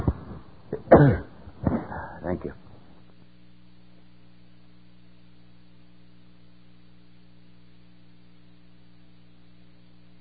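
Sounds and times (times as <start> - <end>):
short breathy catches: 0.0 - 2.3
person sneezing: 0.8 - 2.2
speech: 1.0 - 1.3, 2.3 - 2.6.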